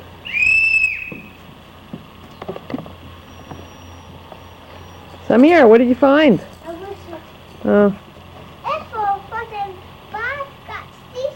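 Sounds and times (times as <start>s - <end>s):
shrill whistle blast: 0.2s - 1.4s, 3.2s - 5.3s
faint knocks: 1.1s - 5.6s
speech: 5.3s - 6.5s, 7.7s - 8.0s.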